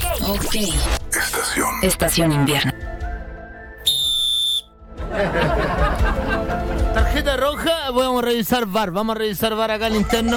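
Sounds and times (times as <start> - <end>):
speech: 0.3 - 1.0, 1.6 - 2.8, 7.6 - 10.3
referee whistle blast: 3.8 - 4.8
laughter: 5.0 - 7.8, 9.7 - 10.3.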